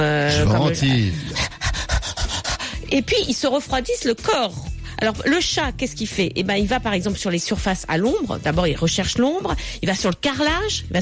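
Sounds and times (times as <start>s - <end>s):
speech: 0.0s - 1.4s, 2.9s - 11.0s
person imitating a dog panting: 1.1s - 2.8s.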